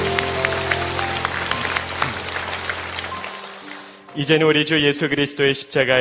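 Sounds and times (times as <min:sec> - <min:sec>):
audience applauding: 0:00.0 - 0:04.3
speech: 0:04.2 - 0:05.9.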